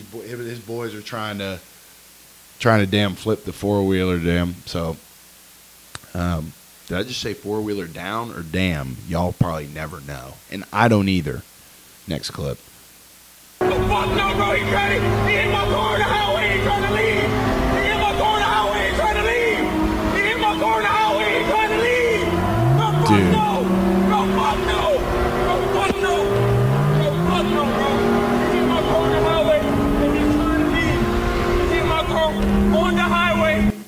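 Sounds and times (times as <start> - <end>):
speech: 0.1 - 1.8, 2.6 - 5.1, 6.1 - 12.7, 13.9 - 17.4
Lamborghini sports car engine roaring, speeding and weaving through traffic: 13.6 - 33.7.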